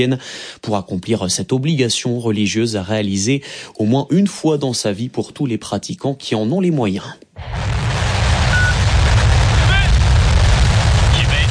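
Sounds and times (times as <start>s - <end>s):
speech: 0.0s - 7.8s
Chinese rocket lift-off roar in the Gobi desert: 7.4s - 11.5s.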